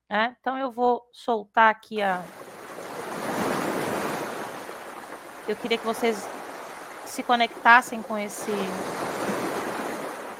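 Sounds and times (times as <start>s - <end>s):
speech: 0.1s - 2.4s, 5.5s - 6.4s, 7.1s - 9.3s
ocean waves washing onto the shore: 2.0s - 10.3s.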